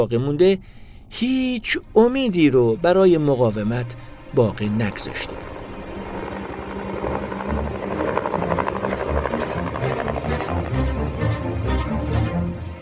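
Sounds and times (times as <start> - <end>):
speech: 0.0 - 5.6
supply helicopters flying past a hill with rotors thumping: 4.5 - 12.2.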